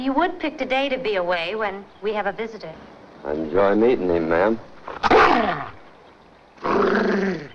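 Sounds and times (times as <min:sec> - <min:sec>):
speech: 0:00.0 - 0:05.8, 0:06.6 - 0:07.5
dog growling: 0:04.8 - 0:05.9, 0:06.6 - 0:07.5.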